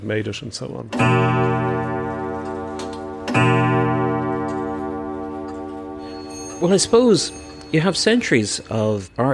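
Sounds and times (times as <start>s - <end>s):
speech: 0.0s - 2.2s, 6.6s - 9.3s
clock ticking: 1.0s - 8.2s
steady ringing tonal hum: 1.0s - 9.3s.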